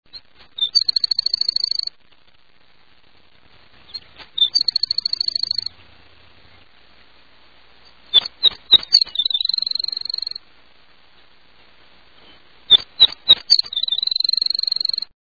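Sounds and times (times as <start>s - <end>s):
Baird's sparrow calling: 0.1s - 1.9s, 3.9s - 5.8s, 7.8s - 10.4s, 12.2s - 15.1s.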